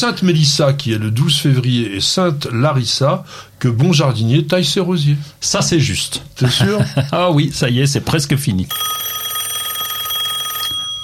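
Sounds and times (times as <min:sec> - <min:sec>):
speech: 0:00.0 - 0:09.1
laughter: 0:06.4 - 0:07.2
telephone bell ringing with metallic trill: 0:08.7 - 0:11.0.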